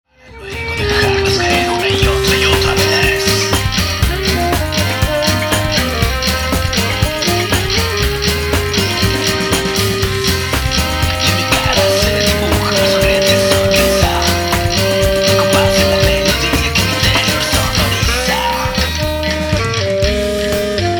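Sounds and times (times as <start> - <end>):
local rhythm music: 0.3 - 20.9.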